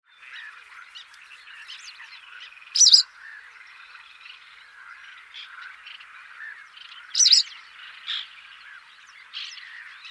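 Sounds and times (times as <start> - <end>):
chorus of softer chirping birds: 0.1 - 10.0
bird giving loud sharp harsh calls: 2.8 - 3.1, 7.2 - 7.5.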